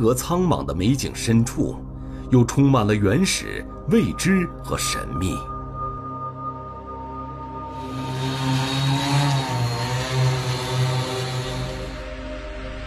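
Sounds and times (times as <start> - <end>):
speech: 0.0 - 5.5
drone with buzzing whining rotors flying overhead: 5.5 - 12.8.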